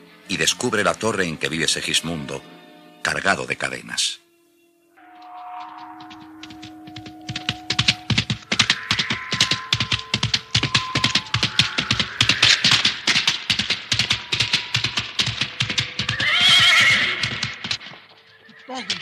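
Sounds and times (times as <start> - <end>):
speech: 0.3 - 4.2
horse galloping through a forest with pounding hooves: 5.0 - 18.9
loud shrill neigh of a horse throwing its rider: 15.8 - 18.9.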